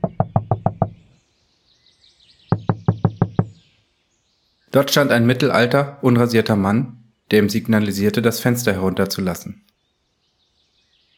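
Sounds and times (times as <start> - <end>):
firm knocking on a car passenger door: 0.0 - 1.0, 2.5 - 3.6
faint birdsong chirping: 0.0 - 11.1
speech: 4.7 - 9.7.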